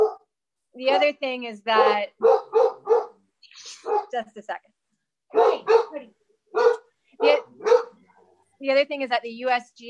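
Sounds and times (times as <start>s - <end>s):
dog barking after a doorbell: 0.0s - 0.3s, 1.7s - 3.2s, 3.8s - 4.2s, 5.3s - 8.2s
speech: 0.8s - 2.4s, 4.1s - 7.4s, 8.6s - 9.8s.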